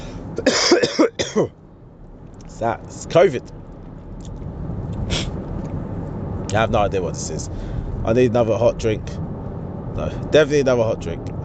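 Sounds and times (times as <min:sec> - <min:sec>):
harsh rasping coughing fit: 0:00.4 - 0:01.5
speech: 0:00.4 - 0:01.6, 0:02.6 - 0:03.6, 0:06.5 - 0:09.3, 0:10.0 - 0:11.4.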